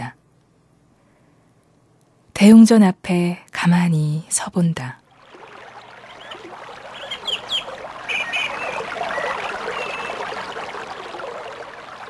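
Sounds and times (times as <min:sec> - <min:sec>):
speech: 0:02.4 - 0:05.0
clear valley stream flowing at a mountain temple: 0:05.1 - 0:12.0
bird chirps: 0:06.0 - 0:12.0.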